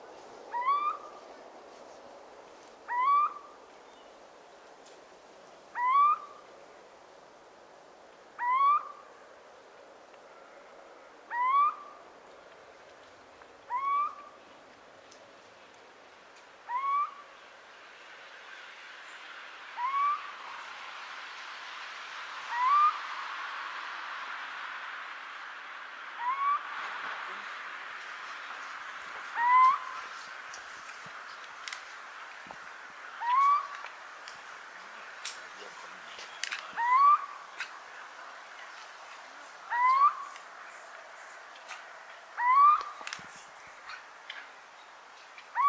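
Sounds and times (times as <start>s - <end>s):
little owl calling: 0.5s - 1.2s, 2.9s - 3.6s, 5.7s - 6.4s, 8.4s - 9.0s, 11.3s - 12.0s, 13.7s - 14.4s, 16.6s - 17.3s, 19.8s - 20.4s, 22.5s - 23.0s, 26.2s - 26.7s, 29.3s - 30.2s, 33.2s - 33.8s, 36.5s - 37.8s, 39.7s - 40.4s, 42.3s - 43.2s, 45.5s - 45.6s.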